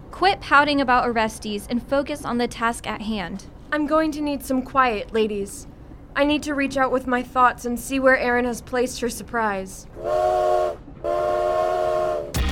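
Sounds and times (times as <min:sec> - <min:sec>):
speech: 0:00.2 - 0:10.4
steam train whistle: 0:10.0 - 0:12.4.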